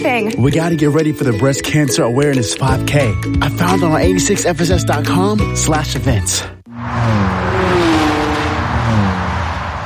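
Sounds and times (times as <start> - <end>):
speech: 0.1 - 7.2
car engine accelerating on a road in Germany: 6.7 - 9.8.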